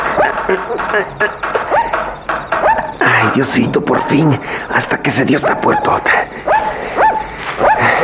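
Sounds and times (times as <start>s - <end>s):
hiss: 0.0s - 8.0s
speech: 0.9s - 1.6s, 3.3s - 6.5s
coyote yelps: 1.4s - 3.0s, 3.8s - 4.3s, 5.2s - 8.0s.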